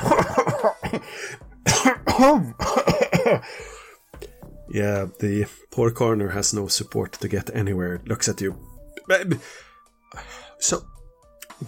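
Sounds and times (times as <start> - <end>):
stifled laugh: 0.0 - 1.0
person coughing in voiced breathy bursts: 0.0 - 3.6
speech: 0.9 - 2.6, 4.7 - 11.0.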